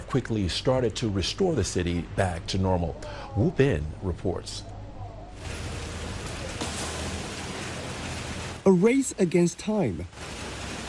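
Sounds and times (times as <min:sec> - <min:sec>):
speech: 0:00.1 - 0:04.7, 0:08.7 - 0:10.4
heavy overnight rain after a typhoon landfall in Yuhuan, Zhejiang: 0:05.4 - 0:10.8.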